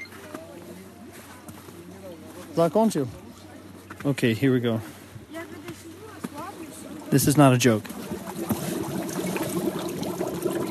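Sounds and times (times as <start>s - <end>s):
speech: 2.6s - 3.2s, 4.0s - 5.0s, 7.1s - 8.0s
water bubbling and trickling in a small cauldron: 6.8s - 10.6s.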